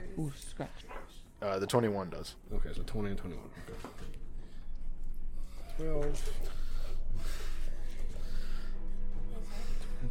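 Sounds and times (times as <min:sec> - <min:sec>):
speech: 0:00.2 - 0:04.2, 0:05.8 - 0:07.4
heavy breathing into a microphone: 0:03.6 - 0:10.0.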